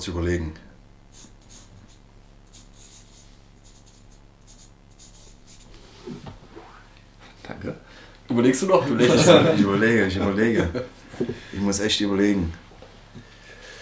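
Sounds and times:
speech: 0.0s - 1.3s, 7.6s - 12.6s
pen signing on paper: 1.1s - 5.8s
laughter: 8.8s - 11.4s.

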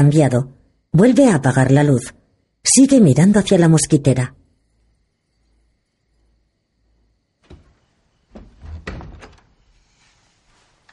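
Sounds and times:
speech: 0.0s - 4.4s
wooden bedroom door closing with latch: 7.4s - 9.9s.

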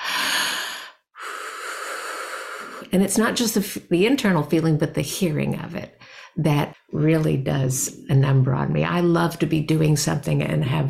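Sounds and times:
person breathing audibly: 0.0s - 2.9s, 6.0s - 6.4s
speech: 2.8s - 10.8s.

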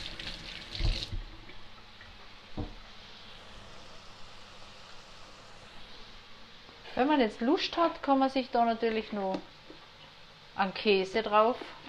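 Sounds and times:
water splashing at a kitchen tap: 0.0s - 1.7s
kitchen tap water running while hands are washed: 0.0s - 5.9s
speech: 7.0s - 9.5s, 10.6s - 11.8s.

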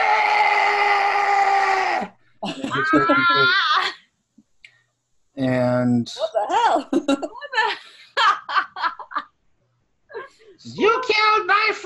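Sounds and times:
voice imitating a kobold's shrill scream: 0.0s - 2.1s, 2.7s - 3.8s
laughter: 2.4s - 3.9s, 6.9s - 9.2s
speech: 2.9s - 4.0s, 5.4s - 8.0s, 10.6s - 11.8s.

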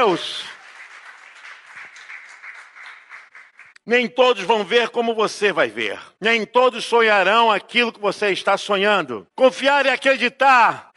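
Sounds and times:
speech: 0.0s - 0.5s, 3.9s - 10.9s
audience applauding: 0.0s - 3.8s.

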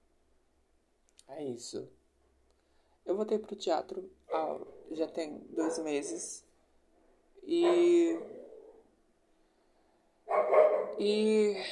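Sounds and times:
speech: 1.3s - 2.0s, 3.1s - 6.5s, 7.4s - 8.4s, 11.0s - 11.6s
dog barking: 5.6s - 6.2s, 7.6s - 8.8s, 10.3s - 11.0s.

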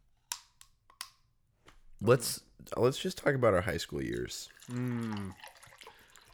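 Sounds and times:
speech: 2.0s - 5.6s
water pouring into a glass: 3.6s - 6.3s.

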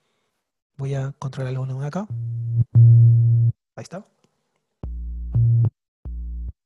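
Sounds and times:
speech: 0.8s - 2.7s, 3.8s - 4.2s
low sine-wave synthesizer tones played on a keyboard: 2.1s - 3.6s, 4.8s - 6.6s.

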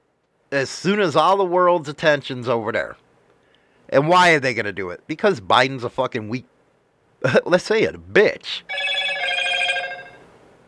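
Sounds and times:
speech: 0.5s - 3.0s, 3.9s - 6.5s, 7.2s - 8.8s
mobile phone ringing with a trilling electronic tone: 8.7s - 10.3s.

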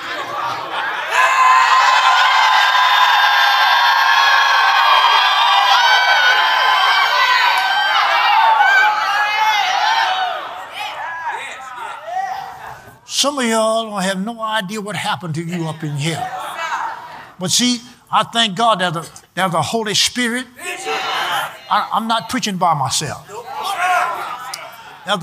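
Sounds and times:
laughter: 0.0s - 2.1s, 11.1s - 13.0s, 15.5s - 17.4s
crowd screaming and whooping: 0.0s - 13.0s, 23.3s - 25.2s
speech: 13.2s - 16.4s, 17.4s - 20.6s, 21.7s - 23.4s, 25.0s - 25.2s.

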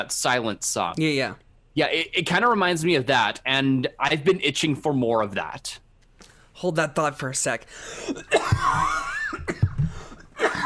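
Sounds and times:
speech: 0.0s - 5.8s, 6.6s - 9.6s, 10.4s - 10.6s
raspy wheezy breaths: 7.7s - 8.3s, 9.8s - 10.4s
person in a fit of harsh coughing: 8.0s - 10.6s.

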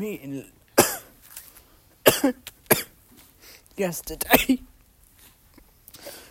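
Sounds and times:
speech: 0.0s - 0.6s, 2.2s - 2.8s, 3.8s - 4.7s
person with a persistent tickly cough coughing: 0.8s - 1.1s, 2.0s - 2.9s, 4.2s - 4.7s.

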